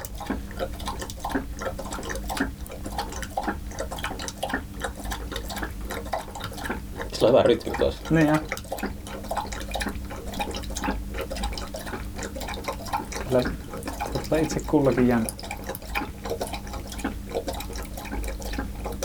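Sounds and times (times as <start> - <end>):
dog lapping drinking water: 0.0 - 19.0
low constant hum: 0.0 - 19.0
speech: 7.2 - 8.9, 13.3 - 13.6, 14.3 - 15.4.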